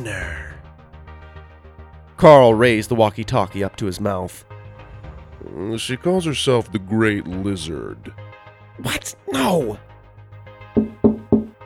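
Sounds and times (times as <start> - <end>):
speech: 2.2 - 4.5, 5.4 - 8.2, 8.8 - 9.9
knocking on a car window: 10.8 - 11.6.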